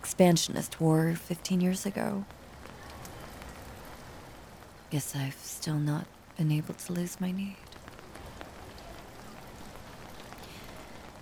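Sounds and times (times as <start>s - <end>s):
drips and patters on a surface: 0.0s - 11.2s
steady rain falling: 0.0s - 11.2s
speech: 0.2s - 2.4s, 4.9s - 7.6s.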